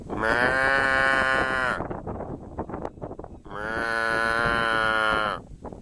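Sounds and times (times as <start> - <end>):
cow mooing in Saskatchewan: 0.1 - 1.8, 3.5 - 5.4.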